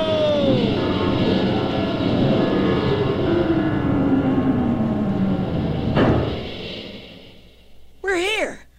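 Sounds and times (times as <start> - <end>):
rocket ship landing on its rockets: 0.0 - 8.0
sharp thump of rocket craft touching down: 6.0 - 6.5.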